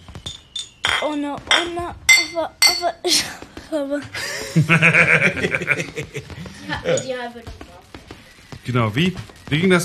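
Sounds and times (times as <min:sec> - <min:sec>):
glasses clinking in a toast: 0:00.2 - 0:02.8
speech: 0:01.0 - 0:07.6, 0:08.7 - 0:09.8
laughter: 0:04.1 - 0:07.1.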